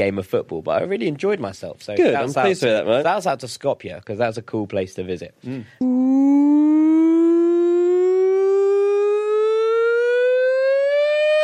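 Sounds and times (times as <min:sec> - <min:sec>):
speech: 0:00.0 - 0:06.6
rising siren tone sound effect jingle: 0:05.8 - 0:11.4.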